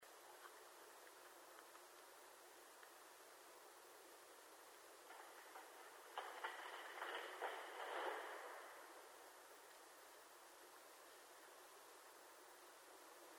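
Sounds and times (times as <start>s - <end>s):
tree falling: 5.1s - 9.2s.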